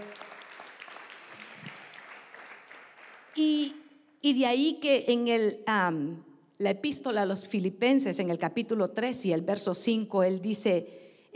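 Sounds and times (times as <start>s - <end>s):
crowd clapping in a large room: 0.0s - 3.7s
speech: 3.4s - 11.3s.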